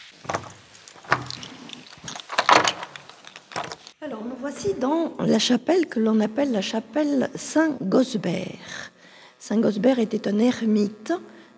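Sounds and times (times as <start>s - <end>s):
heavy old church door creaking and clunking open: 0.0s - 3.9s
speech: 4.1s - 11.5s.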